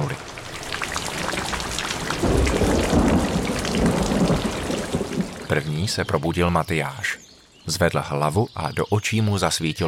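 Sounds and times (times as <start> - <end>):
heavy rain drumming on roof: 0.0 - 5.7
deep rolling rumble of thunder: 1.1 - 5.6
speech: 5.6 - 9.8.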